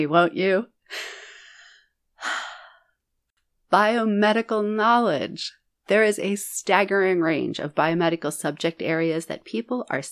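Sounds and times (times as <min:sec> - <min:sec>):
speech: 0:00.0 - 0:01.2, 0:03.7 - 0:10.1
deep breath: 0:00.8 - 0:03.0.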